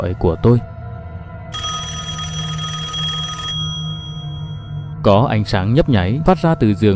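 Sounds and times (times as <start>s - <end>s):
speech: 0.0s - 0.7s, 5.0s - 6.9s
low hum: 0.6s - 6.2s
mobile phone ringing at night beside a bed: 1.5s - 5.0s.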